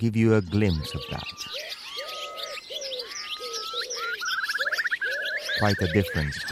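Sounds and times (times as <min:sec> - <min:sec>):
speech: 0:00.0 - 0:01.8, 0:05.6 - 0:06.5
dawn chorus of songbirds with whistles, trills and chirps: 0:00.0 - 0:06.5
low repeated dove-like coos: 0:00.7 - 0:06.5.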